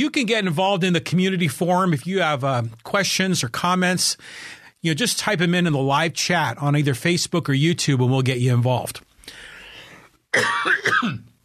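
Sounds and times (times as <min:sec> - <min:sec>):
speech: 0:00.0 - 0:09.5, 0:10.3 - 0:11.3
person clearing throat: 0:10.3 - 0:11.3
person coughing with harsh raspy hacking: 0:10.3 - 0:11.3.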